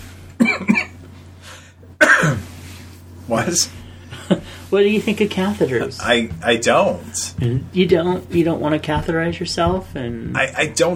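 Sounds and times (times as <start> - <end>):
harsh coughs close to the microphone: 0.4 - 1.1, 2.0 - 2.5
throaty throat clearing: 0.4 - 1.1, 2.0 - 2.5
speech: 3.3 - 3.8, 4.7 - 10.9.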